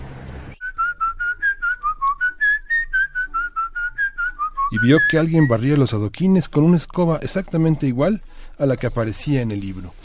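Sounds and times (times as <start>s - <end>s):
person whistling a lively bouncing melody: 0.6s - 5.6s
speech: 4.7s - 10.0s
rustling: 8.8s - 10.0s.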